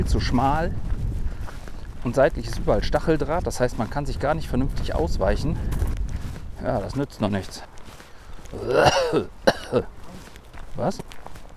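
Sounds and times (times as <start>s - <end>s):
speech: 0.0s - 0.9s, 2.0s - 5.8s, 6.6s - 7.7s, 8.5s - 10.0s, 10.8s - 11.0s
person coughing during an outdoor walk: 8.6s - 9.9s
throat clearing: 8.6s - 10.0s.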